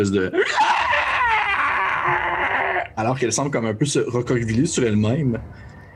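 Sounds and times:
speech: 0.0 - 0.6, 3.0 - 5.7
voice imitating the howl of a creature impaled in the chest with a spear: 0.4 - 3.0.

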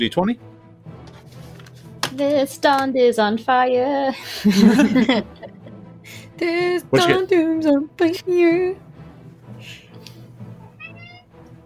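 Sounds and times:
speech: 0.0 - 0.6, 2.2 - 5.6, 6.4 - 8.8
laughter: 4.2 - 5.8
cat meowing during an online voice call: 10.5 - 11.3.

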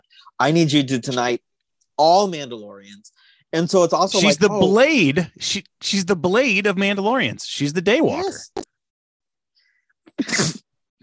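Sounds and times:
speech: 0.2 - 8.7, 10.2 - 10.6
person sneezing: 10.1 - 10.7.

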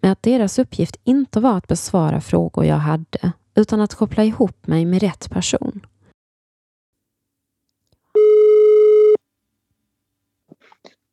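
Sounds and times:
speech: 0.0 - 5.9
telephone ringback tone beep while placing a call: 8.2 - 9.2.

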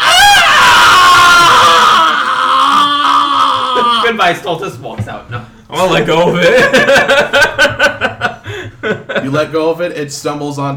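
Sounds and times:
loud sustained high piercing scream: 0.0 - 4.2
speech: 4.2 - 8.2, 8.8 - 10.7
laughter: 6.1 - 9.5.

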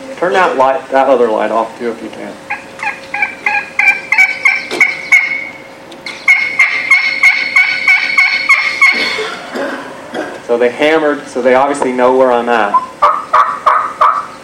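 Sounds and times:
speech: 0.2 - 2.5, 10.5 - 12.9
wild turkeys gobbling: 2.4 - 9.8, 12.7 - 14.4.

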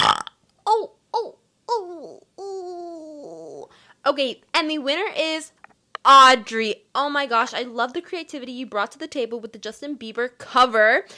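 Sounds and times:
person burping: 0.0 - 0.8
speech: 4.1 - 11.1.

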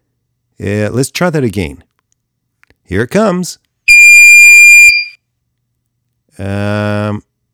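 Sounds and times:
speech: 0.6 - 1.9, 2.9 - 3.6, 6.4 - 7.3
loud high-pitched electronic story beep: 3.9 - 5.2.

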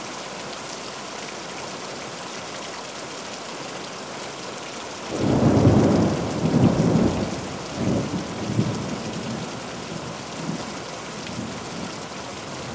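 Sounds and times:
steady downpour of rain: 2.1 - 12.7
rolling thunder: 5.1 - 12.7.

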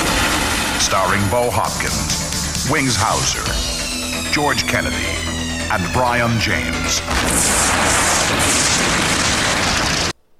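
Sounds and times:
speech: 0.8 - 3.7, 4.3 - 9.3
movie trailer explosions: 7.1 - 10.2.

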